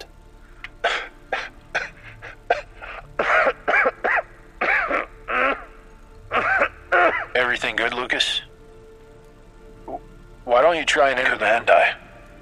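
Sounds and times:
harsh violent coughing: 0.8 - 7.4
speech: 10.8 - 12.0.

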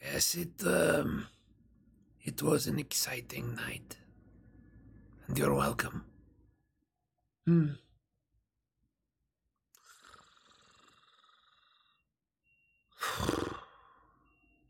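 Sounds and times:
speech: 0.2 - 1.4, 2.2 - 4.0, 5.3 - 6.1, 7.4 - 7.8
person imitating snoring: 9.8 - 12.0, 13.0 - 14.0.

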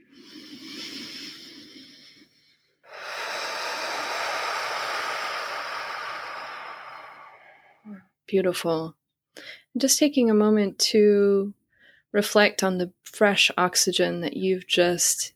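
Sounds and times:
deep inhale during a guided breathing exercise: 0.0 - 8.0
speech: 8.3 - 9.0, 9.8 - 15.3.

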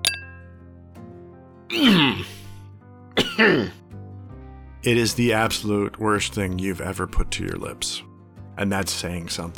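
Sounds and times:
faint glassy clink in a bar: 0.0 - 0.6
speech: 1.7 - 2.4, 3.4 - 3.8, 4.8 - 9.5
man hacking and sputtering after a harsh drink in a bar: 1.7 - 2.5, 3.2 - 3.8.

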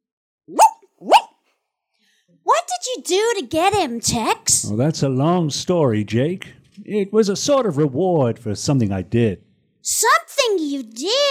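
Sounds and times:
speech: 0.5 - 0.7, 2.4 - 11.2
dog barking: 0.5 - 1.4.

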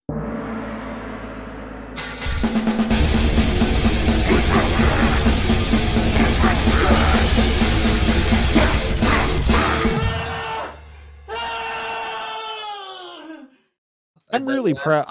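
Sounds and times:
speech: 2.4 - 2.9, 14.4 - 15.0
loud chaotic rock outro song with distorted instrumentation and yelling vocals: 3.0 - 12.2
person screaming: 6.2 - 7.4, 8.5 - 13.5.

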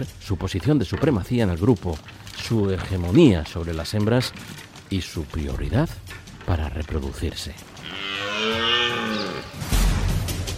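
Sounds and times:
speech: 0.0 - 8.6
rough noisy rustling: 0.8 - 9.8
red deer stag bellowing during the rut: 7.7 - 9.6.

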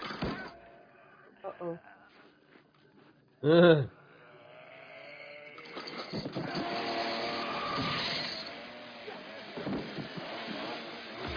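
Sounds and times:
speech: 1.5 - 2.0, 3.4 - 4.0
chainsaw engine running and revving: 4.8 - 11.3.

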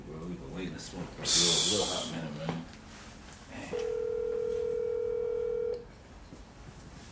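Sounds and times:
men talking: 0.0 - 2.8
phone call ringback tone: 3.8 - 5.8.

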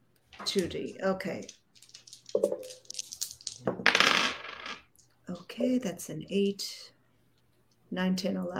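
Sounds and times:
speech: 0.5 - 1.6, 2.4 - 2.8, 5.6 - 6.9, 7.9 - 8.5
dice rattling and rolling across a hard surface: 1.8 - 4.9.

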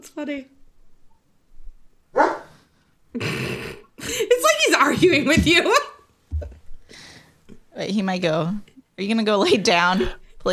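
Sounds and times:
speech: 0.1 - 0.6, 3.1 - 5.9, 7.8 - 10.5
dog barking: 2.2 - 2.6.

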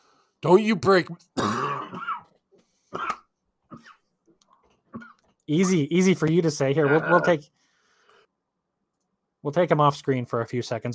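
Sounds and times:
speech: 0.4 - 2.0, 5.5 - 7.6, 9.4 - 10.9
throat clearing: 1.4 - 2.3, 3.0 - 4.1, 4.9 - 5.3
harsh raspy coughing: 1.4 - 4.1, 4.9 - 5.3.

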